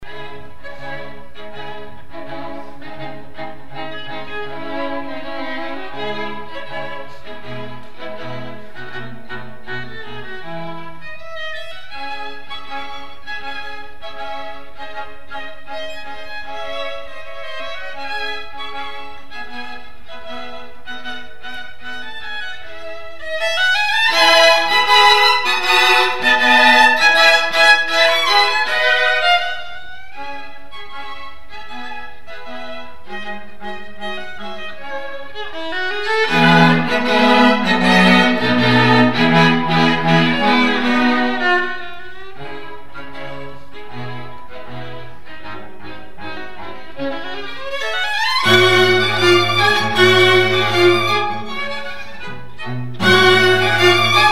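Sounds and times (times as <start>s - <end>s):
first violin of a classical string quartet playing: 0.0s - 54.3s.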